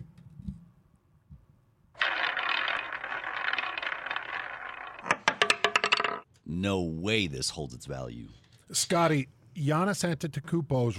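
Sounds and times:
prize wheel spinning and clicking: 0:02.0 - 0:06.2
speech: 0:06.5 - 0:10.9.

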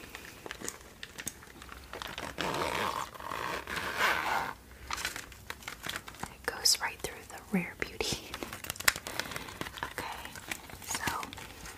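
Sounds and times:
soft crinkling and handling noises from packaging: 0:00.0 - 0:11.7
zipper with a little tag being pulled open: 0:02.2 - 0:04.6
speech: 0:07.5 - 0:07.8.

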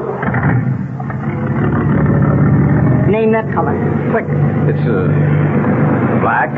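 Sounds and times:
car driving past: 0:00.0 - 0:06.5
speech: 0:03.1 - 0:06.5.

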